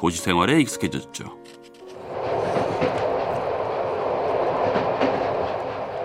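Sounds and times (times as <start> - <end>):
speech: 0.0 - 1.6
train wheels clacking over rail joints: 1.5 - 6.0
local train rumbling along tracks: 1.8 - 6.0.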